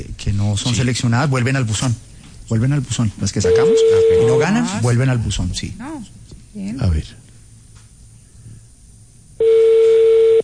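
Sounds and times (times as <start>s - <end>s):
speech: 0.3s - 7.2s
landline telephone tone beep: 3.4s - 4.5s, 9.4s - 10.4s.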